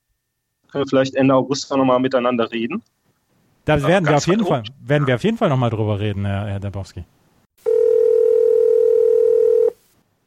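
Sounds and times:
speech: 0.7s - 2.9s, 3.7s - 7.2s
telephone ringing with an incoming call: 7.6s - 9.8s.

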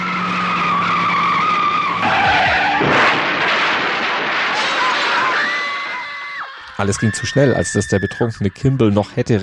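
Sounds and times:
Mazda RX-7 engine roaring at about 120 km/h: 0.0s - 5.3s
car tires screeching in a long loud skid: 0.0s - 9.4s
speech: 6.8s - 9.4s.

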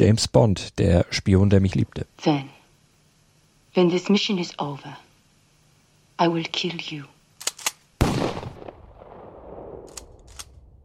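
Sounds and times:
speech: 0.0s - 2.6s, 3.7s - 5.0s, 6.2s - 7.2s
faint snapping pops: 7.4s - 8.2s, 9.8s - 10.6s
gunshot-like bangs: 8.0s - 8.8s.

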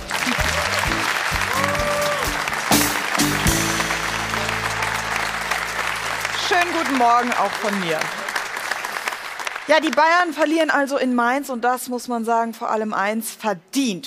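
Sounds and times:
studio audience applauding: 0.0s - 10.3s
cheers and whoops: 0.1s - 2.6s
speech: 6.6s - 8.2s, 9.7s - 14.0s.

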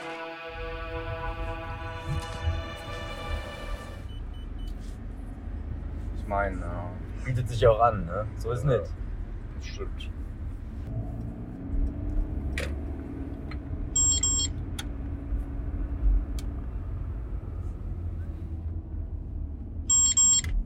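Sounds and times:
steady low rumble of a taxi interior in motion: 1.0s - 20.6s
speech: 6.3s - 9.0s, 9.6s - 10.3s
rapid high-pitched electronic beeping from a taxi's speed camera warning device: 14.0s - 14.6s, 19.9s - 20.6s.

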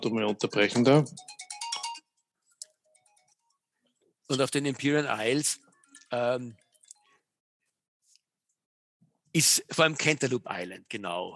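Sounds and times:
speech: 0.0s - 1.4s, 4.3s - 6.6s, 9.3s - 11.3s
mobile phone ringtone with melodic electronic tones: 1.1s - 3.4s.

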